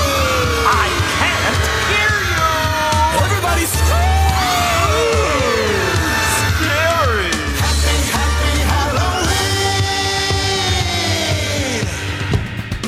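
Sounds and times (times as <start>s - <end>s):
crowd of voices screaming and wailing in a Halloween song: 0.0s - 9.2s
loud steady musical backing: 0.0s - 12.8s.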